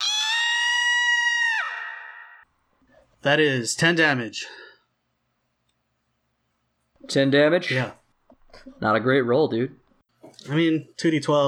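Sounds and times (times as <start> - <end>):
high-pitched scream: 0.0 - 2.4
speech: 3.2 - 4.6, 7.1 - 8.0, 8.6 - 9.8, 10.4 - 11.4.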